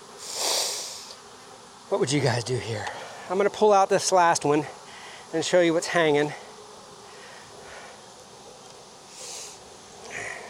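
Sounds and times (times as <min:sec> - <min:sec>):
honeybees buzzing: 0:00.0 - 0:10.4
rustle: 0:00.0 - 0:10.4
speech: 0:01.9 - 0:06.4.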